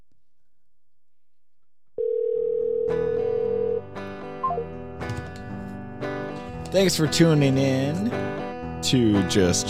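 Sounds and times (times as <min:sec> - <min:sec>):
electronic ringback tone on an outgoing phone call: 0:02.0 - 0:03.8
speech: 0:06.7 - 0:09.6.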